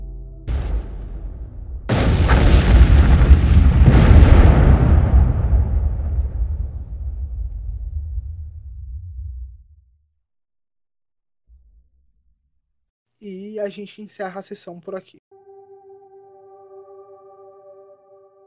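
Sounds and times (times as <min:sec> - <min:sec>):
large explosion from a factory: 0:00.5 - 0:10.0
debris-like crackle from factory explosion: 0:01.9 - 0:09.6
deep rumbling roar of factory explosion: 0:01.9 - 0:10.0
speech: 0:13.6 - 0:15.4.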